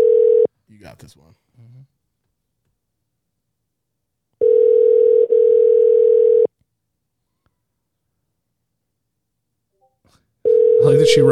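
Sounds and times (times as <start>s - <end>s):
ringback tone on an outgoing phone call: 0.0s - 0.5s, 4.4s - 6.5s, 10.5s - 11.2s
speech: 0.8s - 2.0s, 10.9s - 11.2s.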